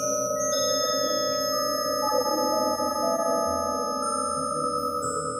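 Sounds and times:
sonified spider web thread vibrations as a drone of layered sustained tones: 0:00.2 - 0:05.3.

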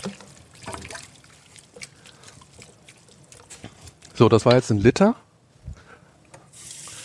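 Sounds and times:
speech: 0:00.0 - 0:00.2, 0:04.2 - 0:05.2
tomato water pouring into a pot of minced meat and vegetables: 0:00.0 - 0:04.0.

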